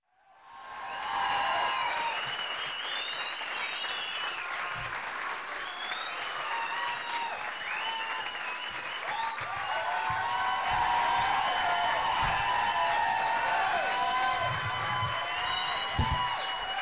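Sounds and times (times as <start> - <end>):
viewers cheering: 0.1 - 16.8
viewers whistling: 1.9 - 16.8.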